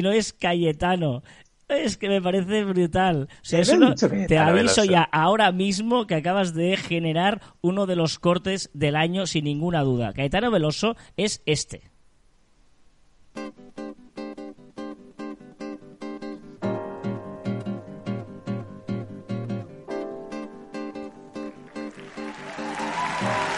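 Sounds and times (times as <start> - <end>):
speech: 0.0 - 12.0
strummed guitar chords: 13.4 - 22.3
concert crowd applause: 21.5 - 23.5.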